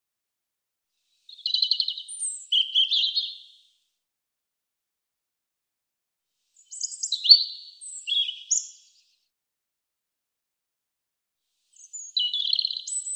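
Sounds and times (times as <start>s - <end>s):
European robin singing high phrases: 1.2s - 3.7s, 6.6s - 9.1s, 11.7s - 13.1s.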